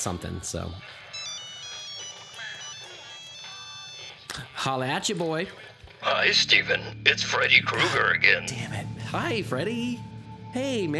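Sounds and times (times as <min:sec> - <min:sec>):
speech: 0:00.0 - 0:01.1, 0:04.4 - 0:10.9
phone ringtone looping electronic melody for an incoming call: 0:00.3 - 0:04.7, 0:06.1 - 0:10.4.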